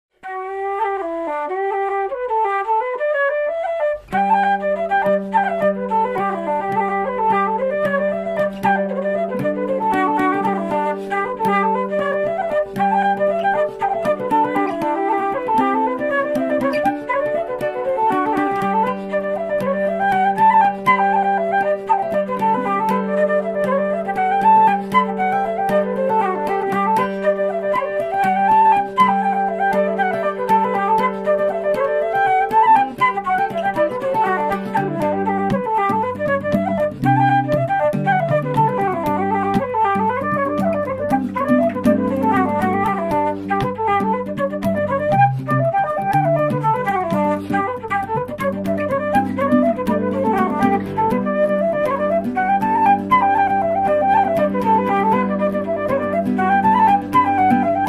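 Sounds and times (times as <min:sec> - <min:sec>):
Irish flute: 0:00.1 - 0:57.8.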